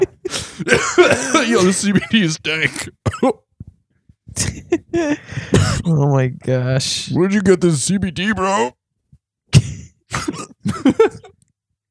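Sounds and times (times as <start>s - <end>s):
person coughing in harsh raspy bursts: 0.0s - 3.4s, 5.4s - 5.9s, 9.6s - 11.4s
speech: 0.6s - 3.4s, 4.4s - 8.8s, 9.5s - 11.3s.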